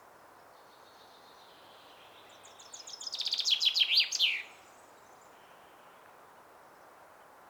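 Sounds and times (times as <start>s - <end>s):
common chaffinch song with descending rattle: 0.6s - 5.6s.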